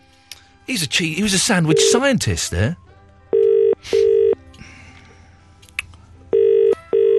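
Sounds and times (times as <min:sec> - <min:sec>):
speech: 0:00.7 - 0:02.8
phone-line ringing tone while calling back a caller: 0:01.7 - 0:02.1, 0:03.3 - 0:04.4, 0:06.3 - 0:07.1.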